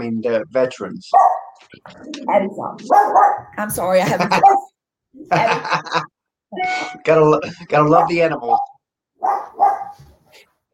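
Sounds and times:
speech: 0:00.0 - 0:10.5
female dog barking: 0:01.1 - 0:01.6, 0:02.8 - 0:03.6, 0:04.3 - 0:04.7, 0:07.9 - 0:10.1
female dog softly yelping or whining: 0:01.2 - 0:01.6, 0:02.8 - 0:03.6, 0:04.3 - 0:04.7, 0:09.2 - 0:10.0
laughter: 0:03.7 - 0:06.1.

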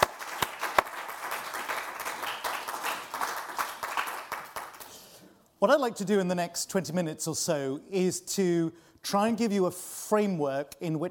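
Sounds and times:
room full of people applauding: 0:00.0 - 0:05.0
speech: 0:05.6 - 0:11.0.

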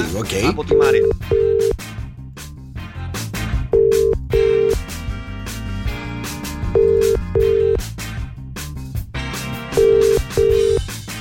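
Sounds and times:
speech: 0:00.0 - 0:01.8
loud music: 0:00.0 - 0:11.1
ringback tone of an outgoing telephone call on a morning show: 0:00.7 - 0:01.8, 0:03.8 - 0:04.8, 0:06.7 - 0:07.8, 0:09.8 - 0:10.8.

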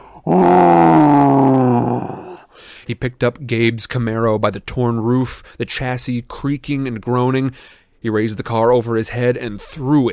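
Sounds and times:
bull-headed monster bellowing in rage: 0:00.2 - 0:02.5
speech: 0:02.9 - 0:10.1.

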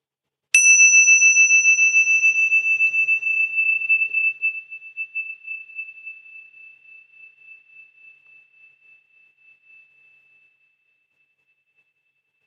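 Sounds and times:
meditation bell struck and ringing: 0:00.6 - 0:04.1.

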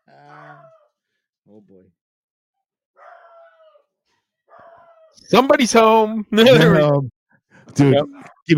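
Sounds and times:
dog barking and whining: 0:00.3 - 0:00.9, 0:03.0 - 0:05.2
speech: 0:01.6 - 0:02.0, 0:05.2 - 0:08.5.

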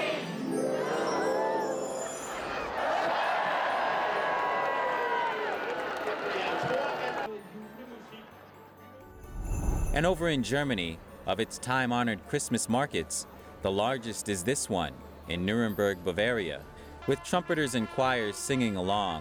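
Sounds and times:
large crowd cheering: 0:00.2 - 0:07.3
speech: 0:10.0 - 0:19.1.

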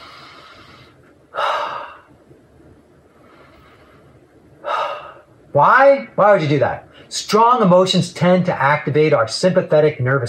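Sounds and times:
person taking calm breaths: 0:00.0 - 0:02.2, 0:03.1 - 0:05.3
speech: 0:05.5 - 0:10.2.

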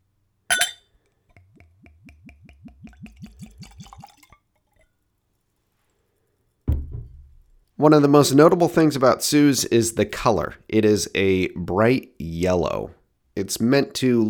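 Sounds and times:
sharp glass clink: 0:00.5 - 0:00.8
spirit glugging from a bottle into a Glencairn glass: 0:00.5 - 0:00.8, 0:03.0 - 0:04.8
speech: 0:07.8 - 0:14.2.

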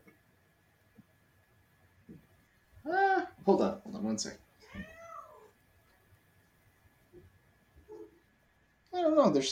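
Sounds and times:
speech: 0:02.9 - 0:04.9, 0:09.2 - 0:09.5
cat meowing under a desk: 0:04.6 - 0:05.6.

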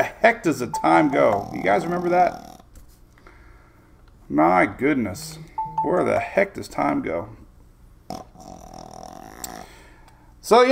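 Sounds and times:
speech: 0:00.0 - 0:02.5, 0:04.3 - 0:07.4, 0:08.1 - 0:08.6, 0:10.4 - 0:10.7
bulldog snoring: 0:08.1 - 0:09.7.

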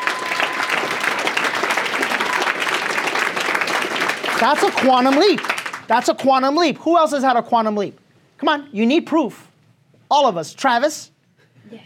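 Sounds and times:
crowd applauding: 0:00.0 - 0:06.0
speech: 0:04.4 - 0:09.5, 0:10.1 - 0:11.8.

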